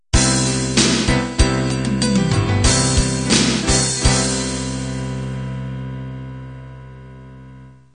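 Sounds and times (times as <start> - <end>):
rock ballad ending: 0.2 - 5.9.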